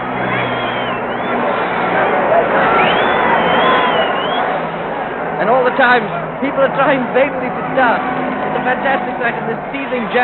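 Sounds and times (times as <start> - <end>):
whistles in a celebrating street crowd: 0.0 - 1.8, 2.6 - 4.7
huge street crowd cheering and shouting in celebration: 0.0 - 10.2
speech: 5.8 - 10.2.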